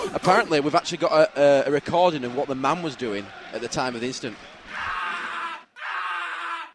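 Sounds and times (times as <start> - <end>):
speech: 0.1 - 4.9
man screaming: 4.7 - 6.7.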